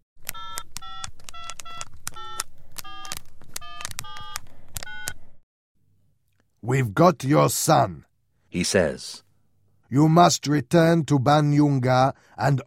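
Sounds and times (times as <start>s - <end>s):
mobile phone keypad beeps as number is dialed: 0.3s - 5.2s
speech: 6.6s - 9.2s, 9.9s - 12.6s.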